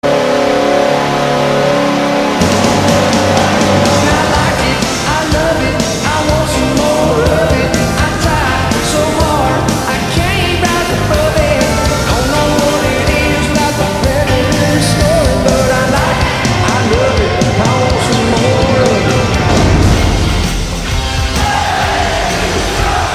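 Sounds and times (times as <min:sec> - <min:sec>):
goal chant: 0:00.0 - 0:20.2, 0:21.0 - 0:23.1.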